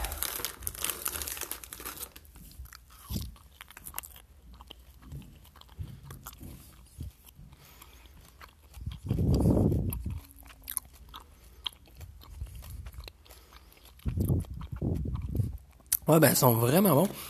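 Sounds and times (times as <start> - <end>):
small plastic candy bag being opened, crinkling: 0.0 - 3.3
moist chewing of soft squishy candies: 0.0 - 17.2
speech: 16.1 - 17.2.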